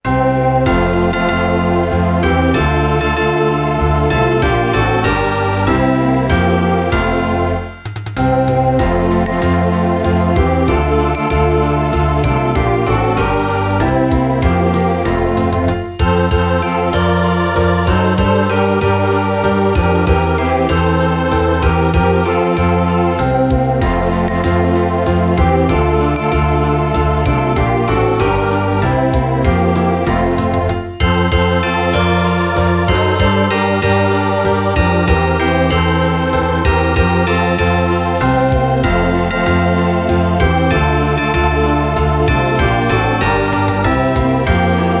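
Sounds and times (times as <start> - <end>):
carol melody playback: 0.0 - 44.9.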